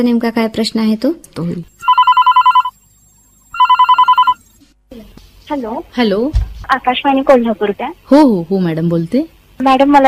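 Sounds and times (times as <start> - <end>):
speech: 0.0 - 1.8, 5.5 - 10.0
telephone ringing for a caller on a radio phone-in: 1.8 - 2.8, 3.5 - 4.4.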